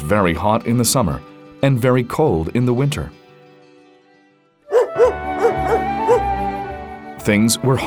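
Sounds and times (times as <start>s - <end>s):
speech: 0.0s - 3.2s, 7.2s - 7.8s
dog barking sharply: 4.7s - 6.3s.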